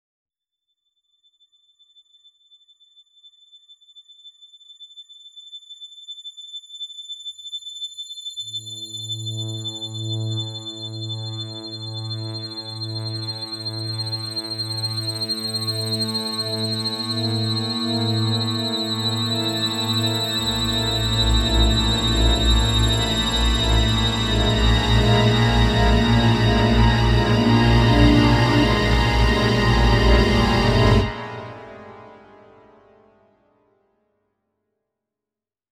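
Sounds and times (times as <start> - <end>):
intense horror build-up music: 10.1 - 32.9.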